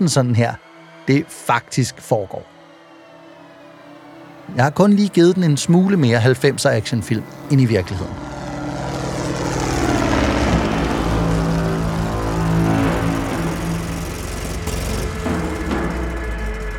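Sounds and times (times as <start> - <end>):
speech: 0.0 - 2.5, 4.5 - 8.3
truck engine droning on a cleared road through the rainforest: 4.1 - 16.7.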